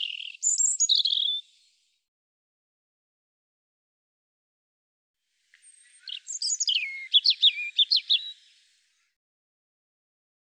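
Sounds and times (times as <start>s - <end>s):
European robin singing: 0.0s - 1.8s, 5.5s - 9.1s.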